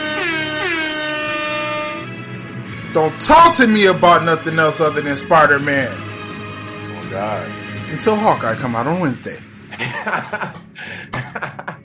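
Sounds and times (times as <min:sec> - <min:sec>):
brassy air horn blaring: 0:00.0 - 0:02.5
speech: 0:02.9 - 0:06.1, 0:07.2 - 0:11.6
laughter: 0:09.7 - 0:11.8.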